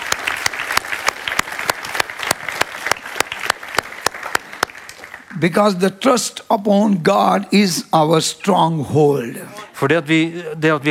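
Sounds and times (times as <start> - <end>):
audience clapping: 0.0 - 5.8
speech: 5.4 - 10.9.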